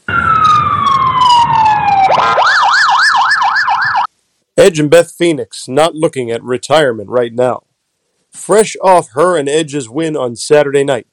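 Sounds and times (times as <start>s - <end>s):
emergency siren wailing: 0.0s - 4.1s
speech: 4.6s - 7.7s, 8.4s - 11.1s.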